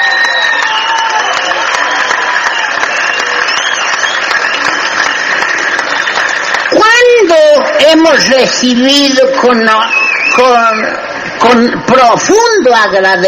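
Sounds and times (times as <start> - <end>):
audience applause: 0.0 - 8.0
speech: 7.4 - 13.2.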